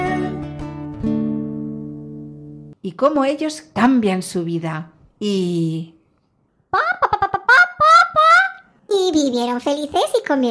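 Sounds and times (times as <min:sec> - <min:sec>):
speech: 0:02.9 - 0:06.0, 0:09.0 - 0:10.4
hen clucking and cackling: 0:06.7 - 0:08.6.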